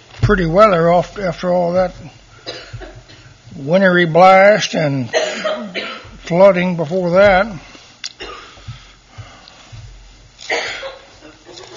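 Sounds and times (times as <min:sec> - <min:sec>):
speech: 0:00.3 - 0:02.2, 0:03.6 - 0:07.7
person coughing harshly: 0:02.4 - 0:03.3, 0:05.1 - 0:06.2, 0:08.2 - 0:08.7, 0:10.4 - 0:11.7.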